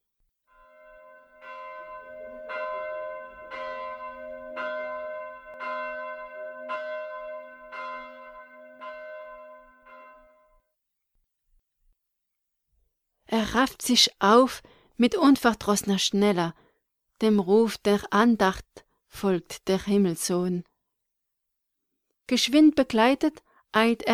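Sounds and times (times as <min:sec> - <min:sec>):
church bell tolling: 0:00.5 - 0:10.6
speech: 0:13.4 - 0:16.6, 0:17.2 - 0:20.7, 0:22.3 - 0:24.1.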